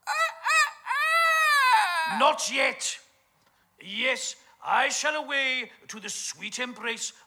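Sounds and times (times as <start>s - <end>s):
rooster crowing: 0.0s - 2.2s
speech: 2.1s - 3.0s, 3.8s - 7.2s.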